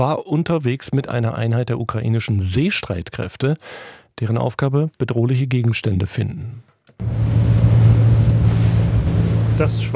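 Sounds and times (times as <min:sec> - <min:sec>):
speech: 0:00.0 - 0:07.6, 0:09.6 - 0:09.9
rushing water of the Black Sea: 0:07.0 - 0:09.9
small naval boat engine humming on the Black Sea: 0:07.0 - 0:09.9.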